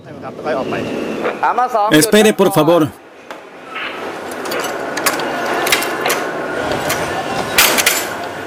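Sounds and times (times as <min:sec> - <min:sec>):
speech: 0:00.2 - 0:03.0
metal clanks: 0:03.8 - 0:08.2
railway switch points being changed with mechanical ratcheting: 0:04.2 - 0:08.4.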